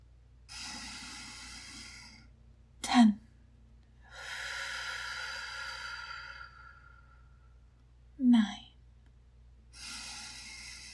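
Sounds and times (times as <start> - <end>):
deep breath during a self-regulating breathing exercise: 0.5 - 2.3, 4.0 - 7.6, 9.7 - 10.9.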